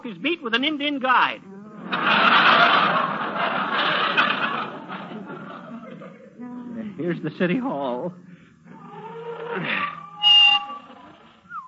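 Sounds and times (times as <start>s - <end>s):
speech: 0.0s - 3.9s, 7.1s - 8.3s, 9.6s - 9.9s
laughter: 1.8s - 6.5s
car brakes squealing as a vehicle comes to a stop: 10.2s - 10.8s.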